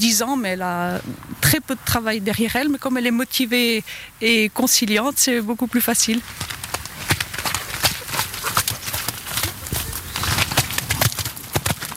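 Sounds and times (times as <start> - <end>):
speech: 0.0 - 6.6
hooves of a ridden 10-year-old mare clip-clopping: 5.0 - 11.9.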